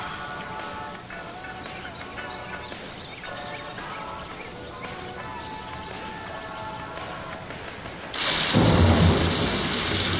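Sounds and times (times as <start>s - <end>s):
heavy rain pouring: 0.0s - 10.1s.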